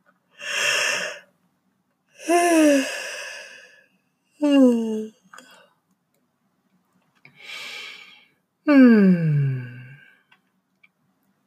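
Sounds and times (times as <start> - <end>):
person yawning: 0.4 - 1.2, 2.2 - 3.8, 7.4 - 10.2.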